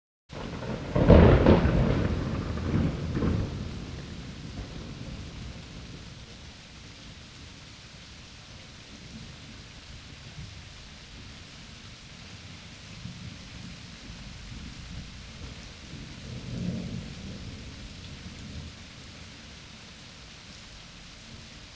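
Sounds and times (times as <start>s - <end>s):
loud thunder strike: 0.4s - 6.2s.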